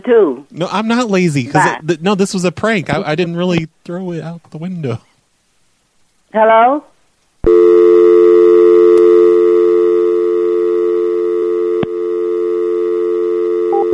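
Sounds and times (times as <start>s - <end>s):
speech: 0.0s - 5.1s, 6.3s - 6.9s
telephone dial tone played over a call: 7.5s - 13.9s.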